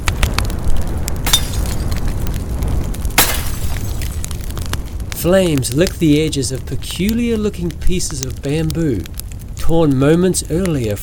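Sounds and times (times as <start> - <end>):
low rumbling background: 0.0 - 11.0
clay pot fragments clattering: 1.2 - 2.2, 3.2 - 4.5
clay pots smashing on the ground: 1.2 - 2.2, 3.2 - 4.2
speech: 5.2 - 11.0.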